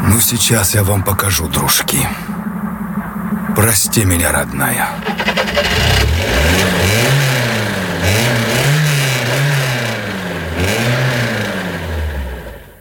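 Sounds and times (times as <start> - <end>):
speech: 0.2 - 2.4, 3.6 - 5.8
car engine revving hard while stuck in a shallow ditch: 5.0 - 12.7.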